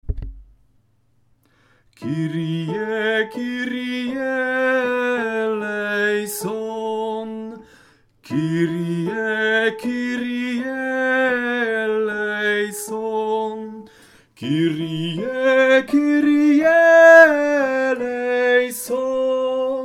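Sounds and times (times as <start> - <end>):
soprano singing a Kyrie: 2.0 - 19.8.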